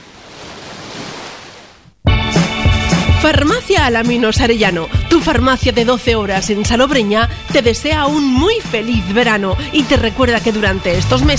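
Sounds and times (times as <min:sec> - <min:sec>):
surf breaking at Playa del Peñón beach in Salobreña: 0:00.0 - 0:02.0
loud music: 0:02.1 - 0:11.3
speech: 0:03.2 - 0:11.3.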